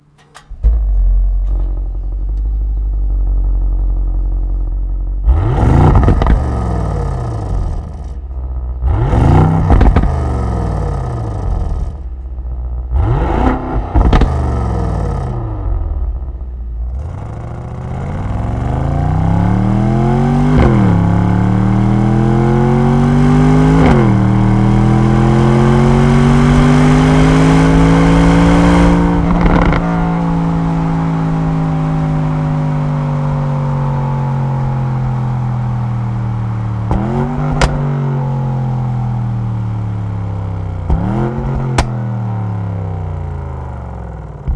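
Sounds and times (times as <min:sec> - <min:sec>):
Mercedes AMG GLE 63 S engine: 0:00.0 - 0:44.5.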